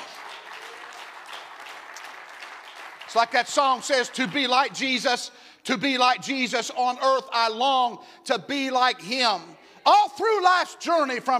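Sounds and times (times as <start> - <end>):
congregation clapping their hands: 0.0 - 5.2
speech: 3.1 - 11.3.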